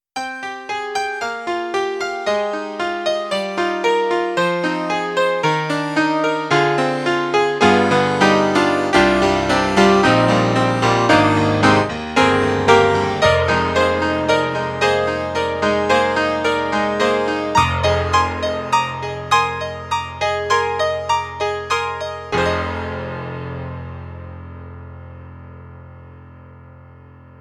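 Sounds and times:
SoundEngine Wave Blaster electric grand piano: 0:00.2 - 0:27.4.

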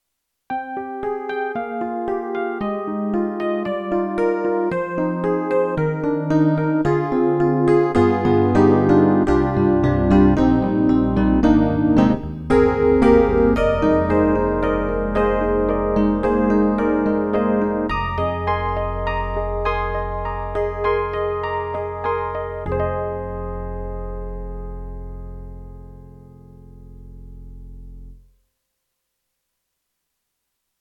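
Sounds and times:
YAMAHA MU1000EX Specter EP electric piano: 0:00.5 - 0:28.3.

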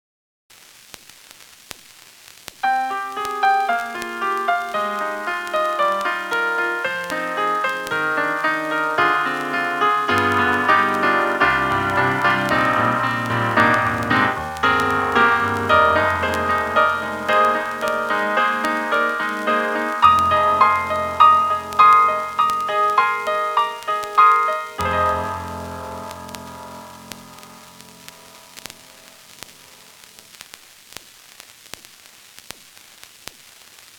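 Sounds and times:
KORG M3 lo-fi acoustic piano patch: 0:02.6 - 0:30.4.

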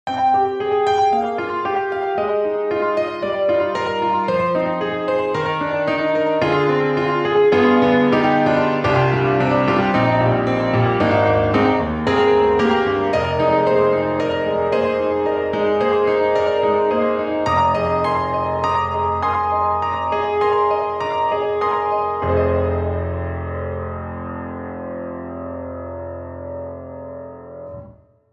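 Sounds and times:
distant grand piano with flange: 0:00.1 - 0:28.3.

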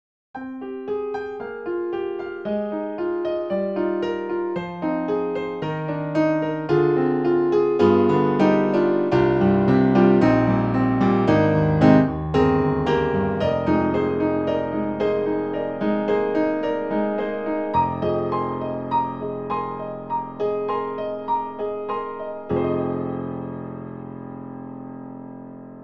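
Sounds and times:
warm grand piano: 0:00.4 - 0:25.8.

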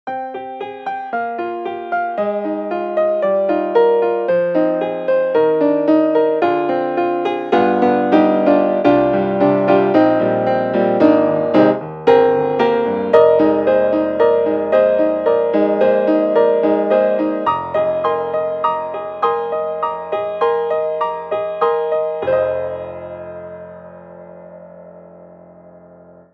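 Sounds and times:
concert grand piano playing baroque music: 0:00.1 - 0:26.3.

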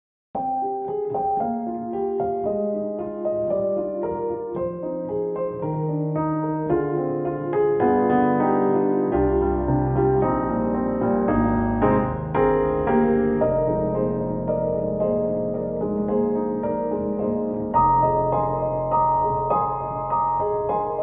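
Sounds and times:
warm and emotional grand piano rhapsody: 0:00.4 - 0:21.0.

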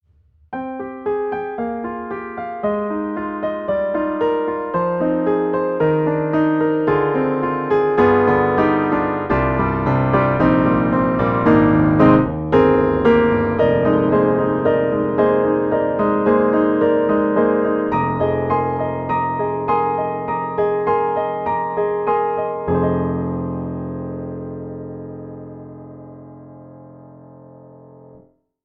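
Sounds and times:
piano playing: 0:00.5 - 0:28.2.

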